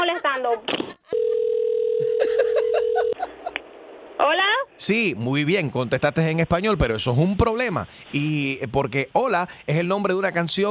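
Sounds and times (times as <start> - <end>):
laughter: 0.0 - 1.2, 2.0 - 3.6
speech: 0.1 - 1.2, 4.2 - 10.6
steady single-pitch telephone line tone while calling someone back: 1.1 - 3.2.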